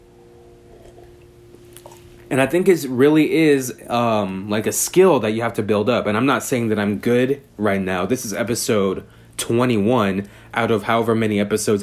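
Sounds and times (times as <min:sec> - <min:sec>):
low steady hum: 0:00.0 - 0:11.8
wet mouth clicks: 0:00.7 - 0:02.1
slurping small sips of a drink: 0:00.7 - 0:02.2
speech: 0:02.3 - 0:11.8.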